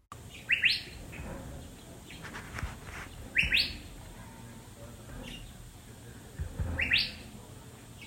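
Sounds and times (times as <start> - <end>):
Curve-billed Thrasher whistled calls: 0.3 - 1.0, 3.3 - 3.9, 6.8 - 7.3.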